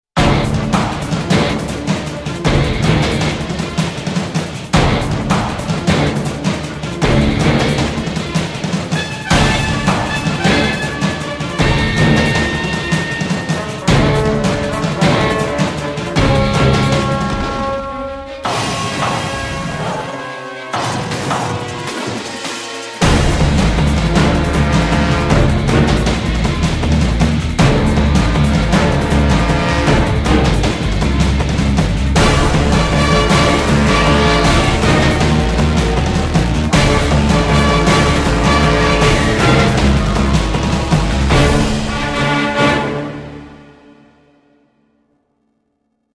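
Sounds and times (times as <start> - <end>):
battle sounds: 0.2 - 44.1.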